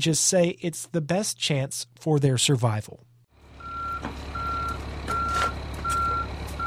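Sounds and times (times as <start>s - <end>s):
speech: 0.0s - 3.1s
semi-truck reversing alarm beeping while backing up: 3.5s - 6.6s.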